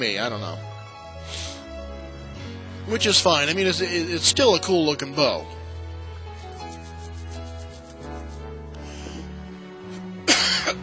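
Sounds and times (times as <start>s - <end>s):
speech: 0.0s - 0.7s, 2.9s - 5.6s
person coughing: 10.3s - 10.8s.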